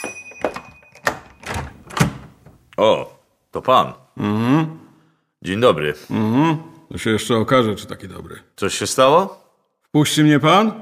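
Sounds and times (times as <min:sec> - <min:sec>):
door latch thunks and knocks of handling: 0:00.0 - 0:02.6
door being opened: 0:00.0 - 0:02.7
speech: 0:02.8 - 0:04.8, 0:05.4 - 0:10.8.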